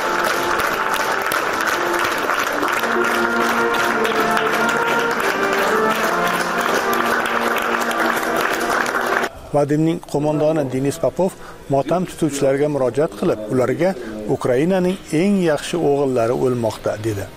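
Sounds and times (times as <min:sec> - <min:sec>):
applause from mourners at a soldier's farewell ceremony in a theatre: 0:00.0 - 0:09.3
speech: 0:09.6 - 0:17.3.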